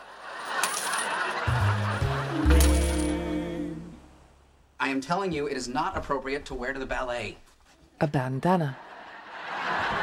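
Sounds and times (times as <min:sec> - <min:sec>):
laughter: 0:00.0 - 0:02.8, 0:08.7 - 0:10.0
handfuls of coins emptied from a woman's pockets: 0:00.4 - 0:01.4, 0:02.6 - 0:03.2
speech: 0:04.9 - 0:07.4, 0:08.0 - 0:08.8.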